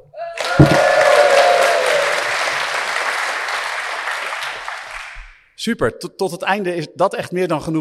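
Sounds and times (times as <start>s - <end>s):
faint cheering: 0.2s - 2.6s
live audience applauding: 0.4s - 5.4s
thump: 0.5s - 1.1s
speech: 5.6s - 7.7s.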